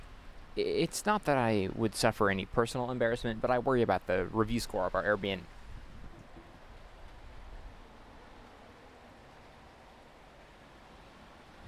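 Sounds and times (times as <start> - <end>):
speech: 0.6 - 5.6
wind buffeting an outdoor microphone: 5.4 - 7.8.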